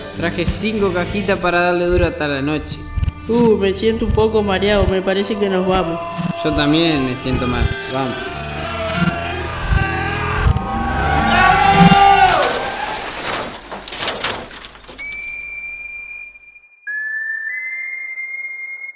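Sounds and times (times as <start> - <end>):
speech: 0.2 - 8.3
car driving by with engine roaring: 7.1 - 13.0
steady high-pitched whistling beeps: 15.0 - 18.9.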